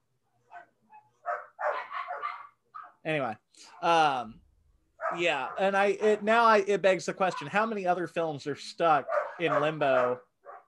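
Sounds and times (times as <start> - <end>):
dogs barking: 0.5 - 3.0, 5.0 - 6.5, 7.2 - 7.8, 8.9 - 10.6
speech: 3.0 - 4.4, 5.1 - 10.3.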